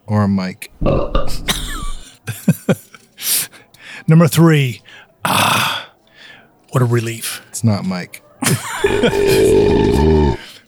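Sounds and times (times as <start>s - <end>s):
speech: 0.1s - 1.8s, 4.1s - 5.7s, 6.8s - 10.5s
gravelly belch: 0.7s - 2.0s, 8.7s - 10.5s
laughter: 1.3s - 3.8s, 7.9s - 10.6s.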